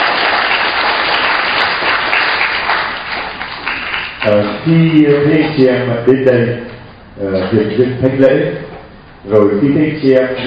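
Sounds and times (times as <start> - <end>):
large crowd applauding: 0.0 - 4.4
speech: 4.2 - 10.4.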